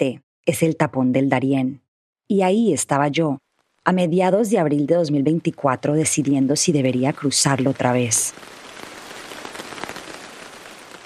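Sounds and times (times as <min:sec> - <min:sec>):
speech: 0:00.0 - 0:08.6
heavy rain pouring with a dense hiss: 0:05.5 - 0:11.0.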